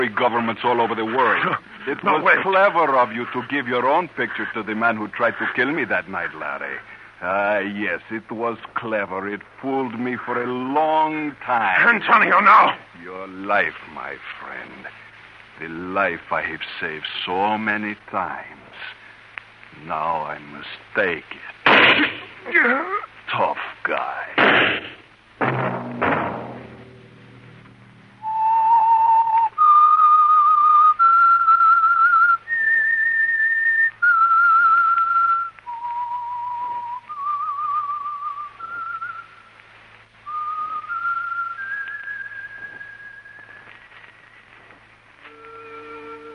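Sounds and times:
speech: 0.0s - 15.0s, 15.6s - 19.0s, 19.7s - 26.0s
heavy thuds: 24.4s - 28.4s
person whistling a slow eerie radio program theme: 28.2s - 39.4s, 40.3s - 43.7s, 45.3s - 46.3s.

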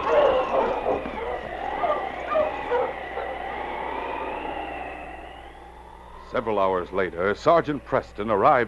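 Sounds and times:
sled dog team of huskies yelping and barking in a snowstorm: 0.0s - 5.5s
speech: 6.3s - 8.6s.

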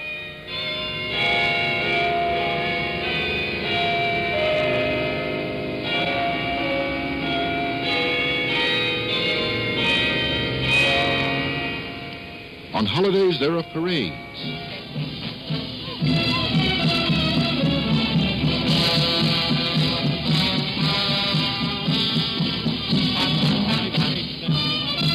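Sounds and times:
church bells ringing on a Sunday: 0.0s - 25.1s
speech: 12.9s - 14.7s.

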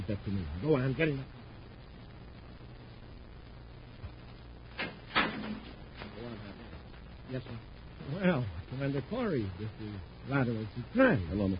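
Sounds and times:
steady low hum: 0.0s - 11.5s
speech: 0.1s - 1.4s, 7.3s - 11.5s
door swinging shut with a solid thud: 4.8s - 5.8s.

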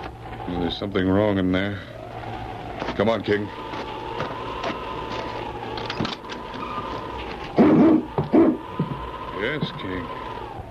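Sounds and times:
speech: 0.5s - 2.0s, 3.0s - 3.7s, 9.4s - 10.2s
husky dogs barking: 7.5s - 9.0s.

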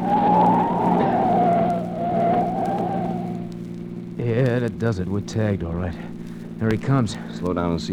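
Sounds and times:
car tires skidding and squealing through a sharp turn: 0.0s - 3.9s
rumbling car engine: 0.0s - 7.9s
speech: 4.7s - 7.9s.

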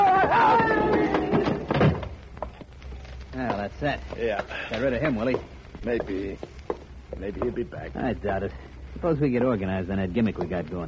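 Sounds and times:
diner door slamming shut: 0.9s - 2.2s
speech: 3.8s - 6.6s, 7.2s - 10.8s.

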